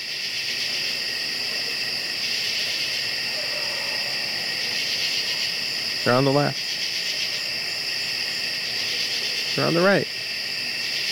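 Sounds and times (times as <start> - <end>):
summer crickets chirping: 0.0 - 11.0
speech: 6.0 - 6.6, 9.6 - 10.0.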